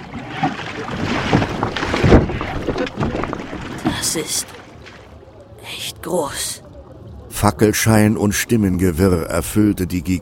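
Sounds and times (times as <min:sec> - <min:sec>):
rowing boat oar strokes splashing: 0:00.0 - 0:05.4
constant wash of water: 0:00.0 - 0:10.1
wind: 0:00.0 - 0:10.1
speech: 0:04.2 - 0:04.6, 0:06.0 - 0:06.6, 0:07.4 - 0:10.1.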